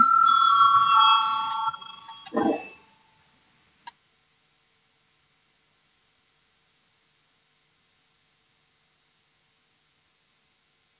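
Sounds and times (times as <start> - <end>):
bell rung in parliament to call a vote: 0.0 - 2.9.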